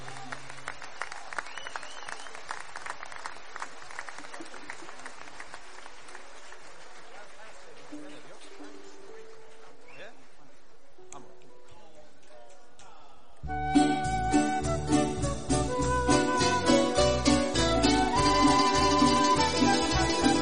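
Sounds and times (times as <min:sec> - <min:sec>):
audience applause: 0:00.0 - 0:09.7, 0:18.0 - 0:20.3
crowd voices: 0:06.2 - 0:20.3.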